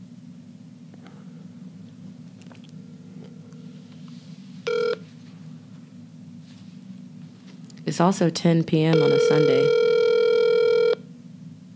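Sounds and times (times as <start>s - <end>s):
low constant hum: 0.0s - 11.7s
electronic phone ring tone: 4.7s - 5.0s, 8.9s - 11.0s
speech: 7.9s - 9.8s.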